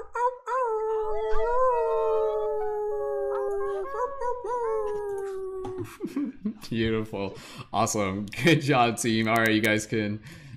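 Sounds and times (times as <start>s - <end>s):
several people on unmuted microphones imitating wolf howls: 0.0s - 6.0s
speech: 5.8s - 10.5s.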